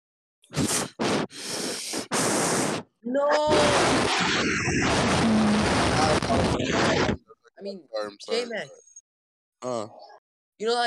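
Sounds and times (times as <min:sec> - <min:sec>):
loud breathing into a microphone: 0:00.5 - 0:02.9
speech: 0:03.1 - 0:08.8, 0:09.6 - 0:10.8.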